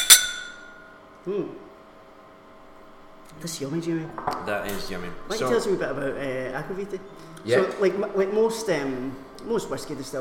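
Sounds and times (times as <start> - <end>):
whisky glasses clinking in a toast: 0.0 - 0.9
speech: 1.2 - 1.7, 3.3 - 10.1.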